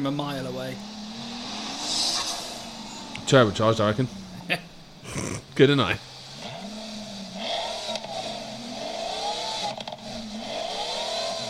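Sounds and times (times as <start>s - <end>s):
speech: 0.0s - 1.0s, 3.3s - 6.1s
Pagani Huayra Mercedes-AMG engine revving hard: 0.0s - 11.4s.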